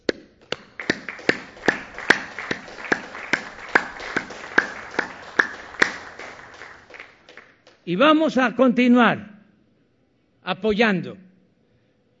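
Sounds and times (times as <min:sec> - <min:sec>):
crowd clapping in rhythm: 0:00.0 - 0:07.9
speech: 0:07.9 - 0:09.3, 0:10.5 - 0:11.2.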